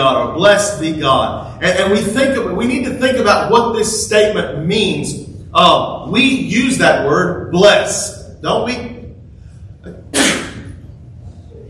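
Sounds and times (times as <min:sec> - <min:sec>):
speech: 0:00.0 - 0:09.0
staged fake sneeze: 0:09.9 - 0:10.8.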